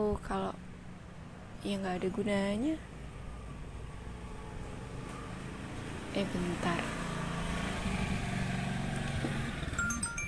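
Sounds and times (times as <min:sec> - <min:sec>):
speech: 0:00.2 - 0:00.7, 0:01.6 - 0:02.9, 0:06.2 - 0:07.0
motorcycle engine idling and revving: 0:00.6 - 0:10.2.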